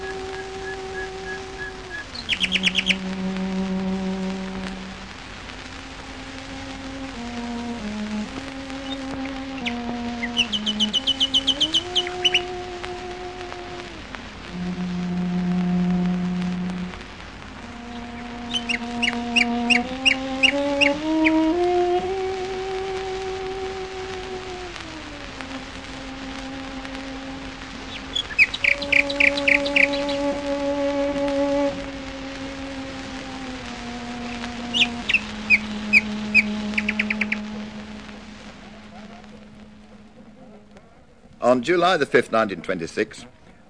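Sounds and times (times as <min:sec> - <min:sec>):
nightingales singing in a wood: 0:00.0 - 0:03.8, 0:08.6 - 0:13.3, 0:17.7 - 0:21.9, 0:27.8 - 0:31.6, 0:33.8 - 0:38.3
slow sustained melody on a bowed cello: 0:00.0 - 0:43.5
speech: 0:02.4 - 0:03.6, 0:41.6 - 0:43.6.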